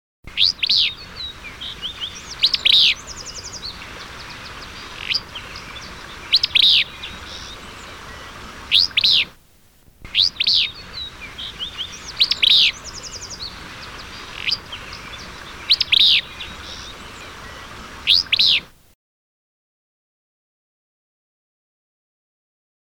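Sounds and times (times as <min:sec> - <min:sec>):
willow flycatcher calling: 0:00.3 - 0:09.4, 0:10.0 - 0:18.8.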